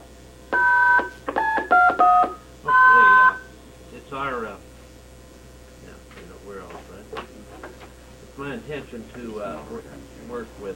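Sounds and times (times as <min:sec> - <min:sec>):
two-tone telephone dialing beeps on a conference call network: 0:00.6 - 0:03.5
speech: 0:08.8 - 0:10.7.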